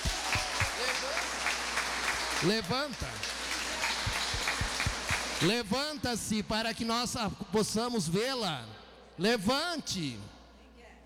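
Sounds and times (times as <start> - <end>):
applause from an audience at a gathering: 0.0 - 5.6
speech: 2.4 - 3.1, 5.4 - 10.4.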